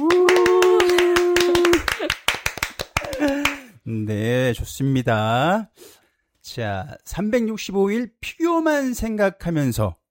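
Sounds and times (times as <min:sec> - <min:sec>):
small group clapping hands enthusiastically: 0:00.0 - 0:03.7
brief cheerful vocal sounds: 0:00.0 - 0:04.1
speech: 0:04.0 - 0:10.0.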